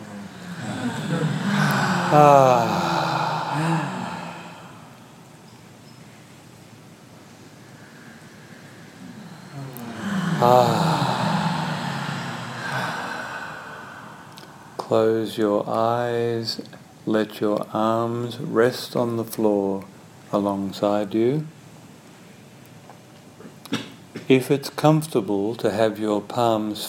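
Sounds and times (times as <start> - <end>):
deep breathing during a guided relaxation exercise: 0.0 - 5.6, 7.2 - 15.3
speech: 2.1 - 2.8, 14.9 - 21.6, 24.3 - 26.8.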